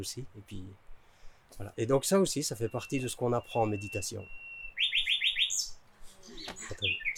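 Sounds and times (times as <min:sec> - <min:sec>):
speech: 0:00.0 - 0:00.9, 0:01.5 - 0:04.4
nightingale singing at night: 0:01.6 - 0:07.1.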